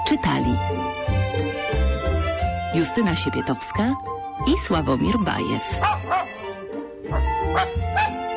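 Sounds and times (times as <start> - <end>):
speech: 0.1 - 1.8, 2.7 - 6.3, 7.1 - 8.1
dog barking: 5.8 - 6.4, 7.1 - 8.3.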